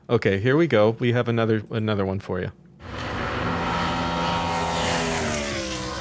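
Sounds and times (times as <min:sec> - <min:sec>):
speech: 0:00.1 - 0:02.6
BMW V8 car engine revving: 0:02.8 - 0:05.9.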